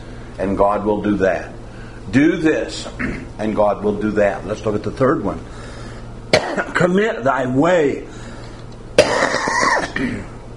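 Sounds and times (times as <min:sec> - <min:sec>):
speech: 0:00.4 - 0:05.6, 0:06.8 - 0:08.2, 0:10.0 - 0:10.3
man coughing despite a cough drop: 0:02.9 - 0:03.4, 0:06.3 - 0:06.8, 0:09.0 - 0:10.4
rough rattling throat clearing: 0:02.9 - 0:03.4, 0:06.4 - 0:06.8, 0:09.0 - 0:10.4.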